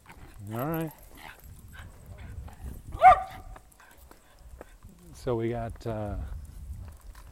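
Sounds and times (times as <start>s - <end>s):
speech: 0.5s - 1.0s, 5.2s - 6.4s
dog yipping bark: 3.0s - 3.6s.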